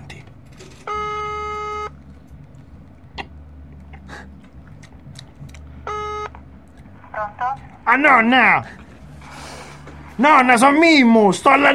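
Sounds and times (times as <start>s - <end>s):
faint hum: 0.0s - 11.7s
telephone ringback tone as an outgoing call is placed: 0.8s - 2.0s, 5.8s - 6.3s
speech: 7.2s - 8.8s, 10.2s - 11.7s.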